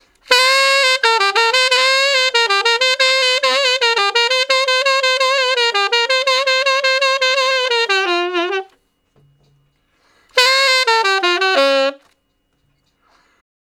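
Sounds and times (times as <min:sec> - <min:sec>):
slow blues tenor saxophone solo: 0:00.2 - 0:08.8, 0:10.1 - 0:12.2.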